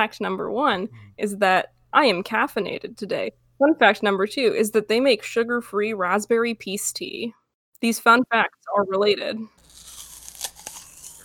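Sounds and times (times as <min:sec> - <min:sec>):
speech: 0:00.0 - 0:09.6
crunchy munching of food: 0:09.6 - 0:11.2.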